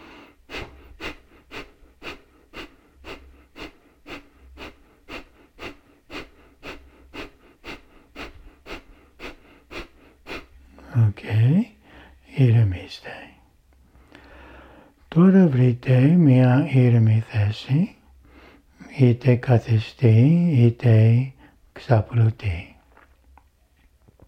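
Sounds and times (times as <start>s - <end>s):
rapid forceful breaths pulling the belly in sharply in a breathing exercise: 0.0s - 10.9s, 13.8s - 15.1s
speech: 11.0s - 11.7s, 12.4s - 13.2s, 15.2s - 18.0s, 19.0s - 22.7s.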